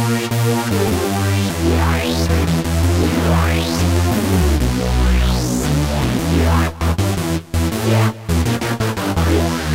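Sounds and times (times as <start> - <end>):
NRG synth stab on a Korg microKORG: 0.1 - 9.6.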